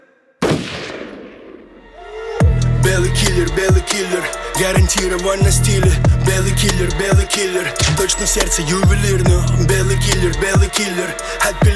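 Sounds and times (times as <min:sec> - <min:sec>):
rifle gunshots: 0:00.4 - 0:01.8
low rumble: 0:01.9 - 0:03.8, 0:04.6 - 0:07.2, 0:07.8 - 0:10.6
speech: 0:02.9 - 0:11.7.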